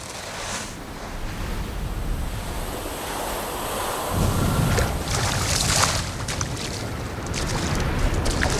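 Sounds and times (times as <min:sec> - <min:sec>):
ocean waves crashing on a beach: 0:00.0 - 0:08.5
wind buffeting the microphone: 0:00.4 - 0:08.5.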